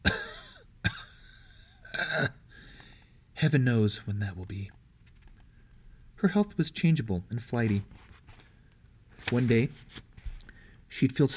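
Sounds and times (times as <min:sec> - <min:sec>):
person coughing: 0:00.0 - 0:02.4
speech: 0:03.4 - 0:04.8, 0:06.2 - 0:08.1, 0:09.3 - 0:10.1, 0:10.9 - 0:11.3.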